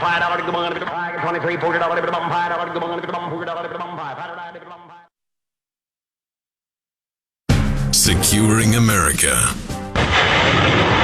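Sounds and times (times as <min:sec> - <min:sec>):
speech: 0:00.0 - 0:04.8, 0:08.0 - 0:11.0
truck-mounted mobile rocket artillery system firing near the foothills of Mount Fuji in Japan: 0:09.9 - 0:11.0.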